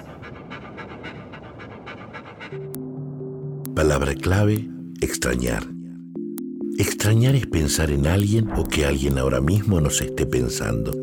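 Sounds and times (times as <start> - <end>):
dog panting: 0.0 - 3.1
speech: 3.8 - 5.8, 6.8 - 11.0.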